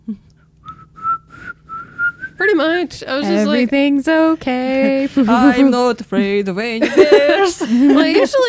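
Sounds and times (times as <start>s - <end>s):
speech: 0.1s - 0.3s, 2.4s - 8.4s
person on a trail whistling a short simple tune: 0.6s - 2.4s
laughter: 4.7s - 5.9s, 6.8s - 8.4s.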